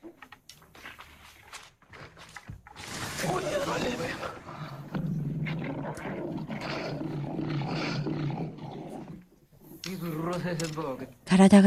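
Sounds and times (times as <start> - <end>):
lions roaring and growling: 2.9 - 9.8
speech: 10.0 - 11.6.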